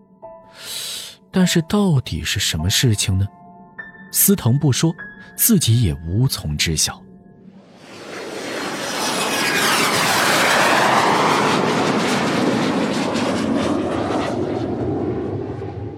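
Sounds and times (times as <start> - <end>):
speech: 1.3 - 3.4, 4.1 - 7.1
airplane engines roaring at takeoff: 7.6 - 15.9.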